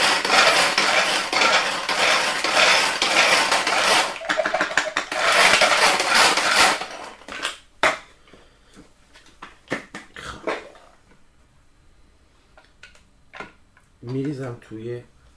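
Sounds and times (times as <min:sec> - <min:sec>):
fresh garlic cloves grated in a bowl: 0:00.0 - 0:07.2
speech: 0:14.7 - 0:15.2.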